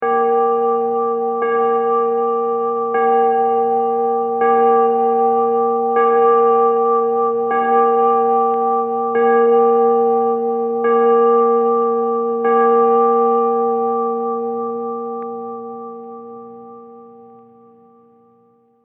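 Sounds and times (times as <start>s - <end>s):
church bell chiming: 0.0s - 18.8s.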